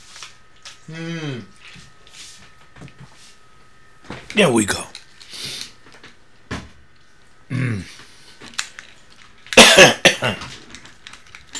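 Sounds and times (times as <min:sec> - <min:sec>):
speech: 0:00.9 - 0:01.9, 0:04.4 - 0:04.9
old man coughing into the microphone: 0:09.6 - 0:10.4.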